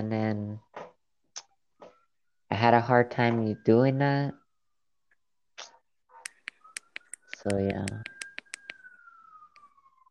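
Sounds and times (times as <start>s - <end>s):
emergency vehicle siren wailing outside: 1.4s - 4.8s, 5.7s - 10.0s
speech: 2.6s - 4.4s, 7.4s - 8.1s
sharp clicks: 5.6s - 8.9s.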